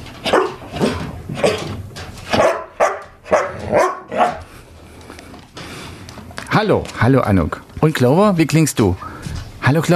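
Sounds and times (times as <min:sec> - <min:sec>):
snow-white rescue dog barking: 0:00.3 - 0:01.6, 0:02.3 - 0:04.5
speech: 0:06.6 - 0:09.1, 0:09.7 - 0:09.9.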